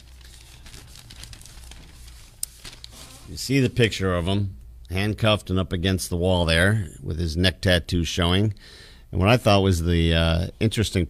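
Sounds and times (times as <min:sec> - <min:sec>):
newspaper pages rustling and crinkling: 0:00.0 - 0:04.0
speech: 0:03.3 - 0:11.0.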